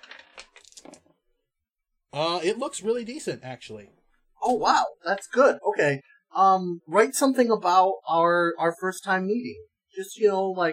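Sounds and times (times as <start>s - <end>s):
four dice rolling across a hard tabletop: 0.0s - 1.1s
speech: 2.1s - 10.7s.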